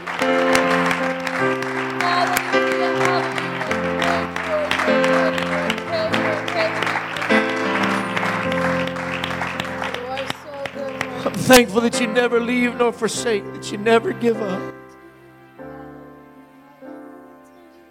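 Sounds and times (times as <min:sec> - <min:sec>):
audience applauding: 0:00.0 - 0:13.4
sustained keyboard chords: 0:00.0 - 0:17.8
speech: 0:11.5 - 0:14.7.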